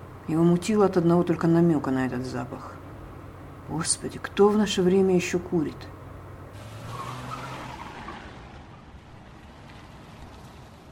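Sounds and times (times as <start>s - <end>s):
car engine rumble: 0.0s - 10.9s
speech: 0.3s - 2.8s, 3.7s - 6.0s
car braking hard with tire squeal: 6.5s - 8.9s.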